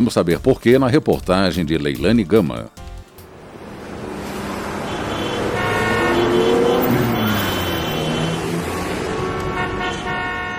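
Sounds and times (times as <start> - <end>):
speech: 0.0 - 2.8
busy city street traffic: 3.0 - 10.5
car horns honking: 3.3 - 10.5.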